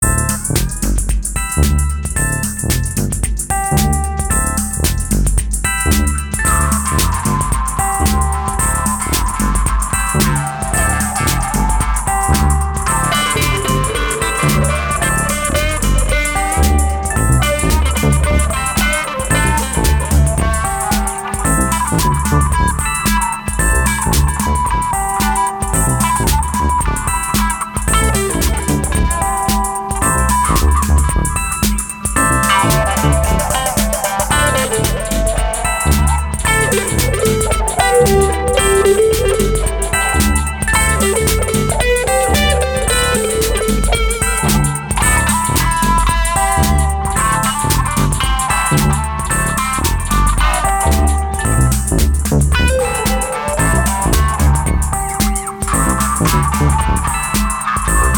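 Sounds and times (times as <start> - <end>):
music groove: 0.0 - 58.1.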